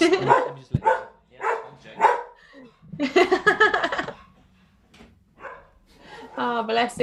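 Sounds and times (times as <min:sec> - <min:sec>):
laughter: 0:00.0 - 0:00.6, 0:02.5 - 0:04.3
dog barking at the door: 0:00.1 - 0:02.4, 0:05.4 - 0:05.8
speech: 0:06.7 - 0:07.0.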